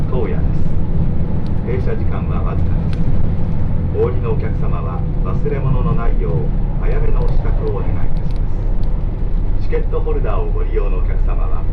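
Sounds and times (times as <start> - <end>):
limited express train deep running rumble: 0.0 - 11.7
voices inside a limited express train: 1.6 - 3.1, 3.9 - 8.7, 9.6 - 11.7.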